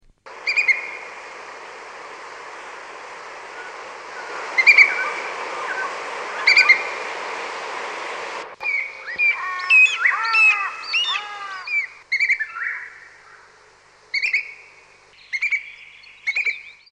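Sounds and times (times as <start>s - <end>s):
little eagle calls: 0.3s - 13.5s.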